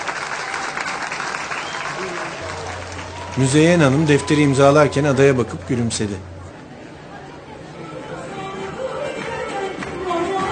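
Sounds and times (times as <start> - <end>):
wedding guests applauding: 0.0 - 6.2
speech: 3.4 - 6.3.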